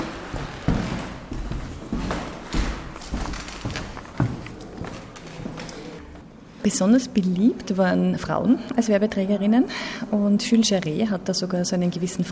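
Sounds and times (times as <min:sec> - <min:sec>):
footsteps of several people walking across a hard exhibition floor: 0:00.0 - 0:06.3
speech: 0:06.6 - 0:12.3.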